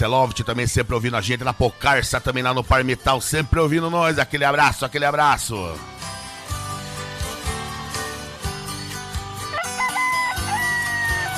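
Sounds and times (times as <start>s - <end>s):
speech: 0.0s - 6.2s
rooster crowing: 9.5s - 11.3s.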